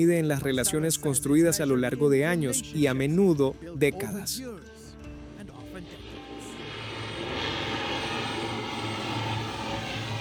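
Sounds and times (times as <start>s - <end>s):
speech: 0.0s - 4.8s
airplane engine roar while landing: 5.2s - 10.1s.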